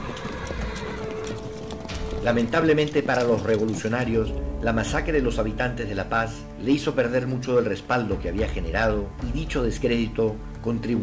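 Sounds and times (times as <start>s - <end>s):
horse whinnying: 0.0s - 3.9s
horse hooves clip-clopping in a walk: 0.0s - 4.9s
speech: 2.2s - 11.0s.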